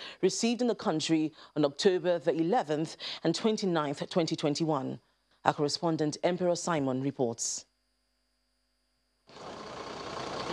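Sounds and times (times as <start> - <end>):
speech: 0.2 - 7.7
truck engine rumbling at a dumping site: 9.3 - 10.5.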